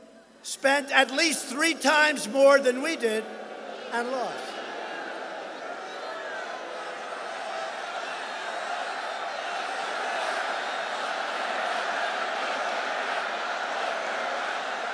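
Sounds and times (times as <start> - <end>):
speech: 0.4 - 4.5
large political rally crowd roaring and shouting angrily: 3.0 - 14.9.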